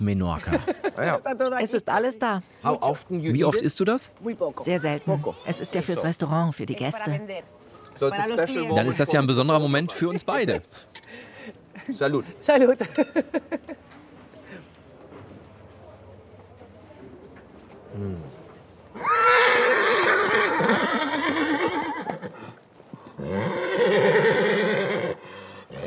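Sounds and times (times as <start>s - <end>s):
speech: 0.0s - 13.8s, 18.0s - 18.4s
faint crowd murmur: 4.1s - 23.2s
horse whinnying at the Fiesta de San Juan horse festival in Fornells, Menorca: 19.0s - 22.4s, 23.2s - 25.2s.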